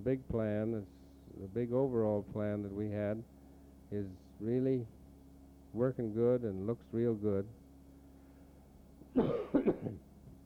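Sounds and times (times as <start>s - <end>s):
speech: 0.0s - 5.0s, 5.7s - 7.6s, 9.2s - 10.0s
person coughing rough husky coughs: 9.1s - 10.1s.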